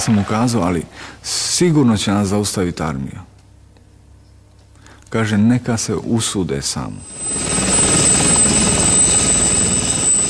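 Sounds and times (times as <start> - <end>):
speech: 0.0 - 3.3, 5.1 - 7.7
high police helicopter turbine whine: 6.8 - 10.2
police helicopter rotors thudding during takeoff from Zagreb Croatia: 7.0 - 10.2.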